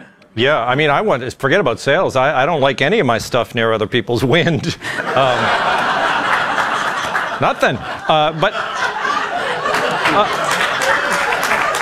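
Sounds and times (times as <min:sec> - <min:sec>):
speech: 0:00.4 - 0:05.8, 0:07.4 - 0:08.8, 0:10.1 - 0:10.5
audience laughing: 0:04.4 - 0:11.8
overlapping voices: 0:05.0 - 0:11.8
audience applause: 0:05.1 - 0:08.1, 0:08.8 - 0:11.8.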